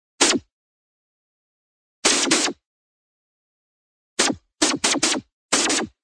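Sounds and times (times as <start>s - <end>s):
cartoon sci fi sharp laser zap: 2.0s - 2.6s, 4.2s - 6.0s.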